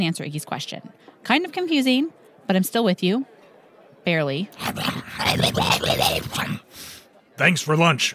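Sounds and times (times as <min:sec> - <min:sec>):
speech: 0:00.0 - 0:03.3, 0:04.0 - 0:08.1
human voice imitating a dog growl with whiny tones: 0:04.6 - 0:06.7.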